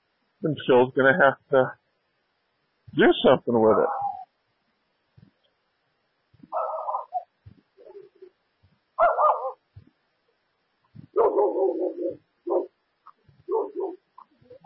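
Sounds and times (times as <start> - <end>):
speech: 0.4 - 1.8, 2.9 - 4.0
dog barking and yelping: 6.5 - 8.1, 9.0 - 9.6, 11.1 - 12.8, 13.5 - 14.3.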